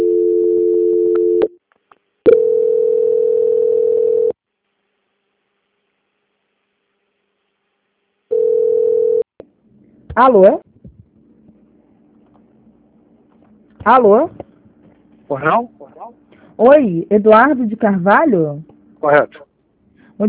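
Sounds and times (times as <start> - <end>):
telephone line tone during call transfer: 0.0 - 1.6, 2.3 - 4.4, 8.3 - 9.3
speech: 10.2 - 10.7, 13.8 - 14.4, 15.3 - 19.4.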